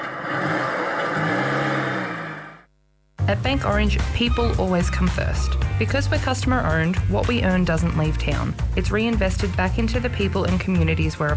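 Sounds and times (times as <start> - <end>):
petrol car engine revving: 0.0 - 2.7
speech: 3.3 - 11.3.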